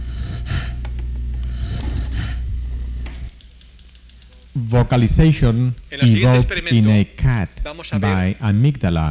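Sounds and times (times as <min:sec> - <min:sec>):
chimpanzee breathing after brain stimulation is switched off: 0:00.0 - 0:03.4
constant low hum: 0:00.0 - 0:06.2
speech: 0:04.7 - 0:09.0.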